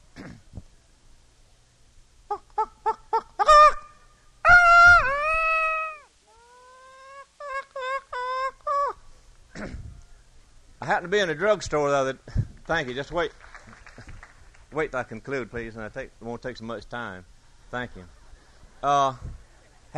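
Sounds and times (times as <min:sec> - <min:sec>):
man's voice imitating barnyard fowl clucks, squawks and gobbling: 0:02.3 - 0:10.2
speech: 0:10.9 - 0:13.4, 0:14.8 - 0:18.2, 0:18.8 - 0:19.3.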